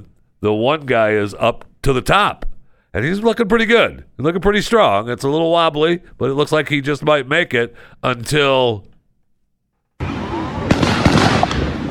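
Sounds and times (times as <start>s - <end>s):
speech: 0.0s - 8.9s
gunshots in a park: 10.0s - 11.9s.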